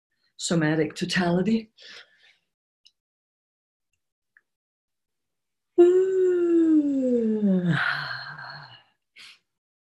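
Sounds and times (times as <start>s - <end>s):
speech: 0.4s - 2.1s, 5.8s - 8.0s
person yawning: 5.8s - 8.8s.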